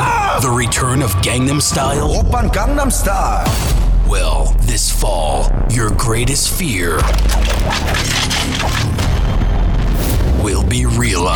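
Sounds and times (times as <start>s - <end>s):
speech: 0.4s - 9.4s, 10.4s - 11.3s
gunfire: 7.0s - 9.4s.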